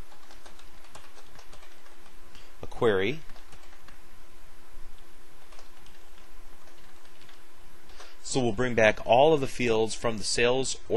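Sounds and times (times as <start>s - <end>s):
computer keyboard typing a query: 0.0s - 4.0s, 5.4s - 8.2s
speech: 2.8s - 3.3s, 8.3s - 10.9s.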